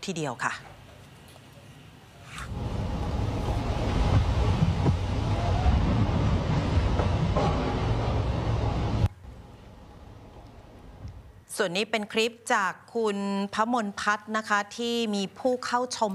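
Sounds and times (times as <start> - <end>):
speech: 0.0 - 0.7, 11.6 - 16.1
heavy rain pouring: 2.5 - 9.1
strong wind roaring into the microphone: 2.5 - 9.1.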